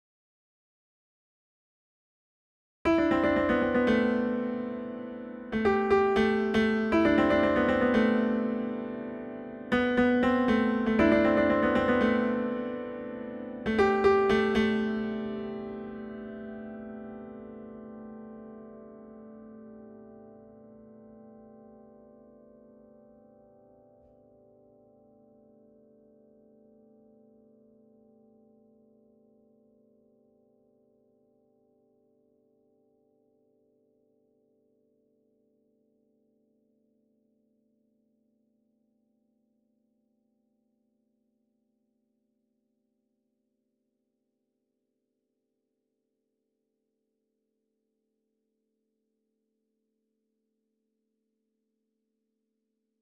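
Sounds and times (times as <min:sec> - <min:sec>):
piano pattern on break: 0:02.9 - 0:22.8.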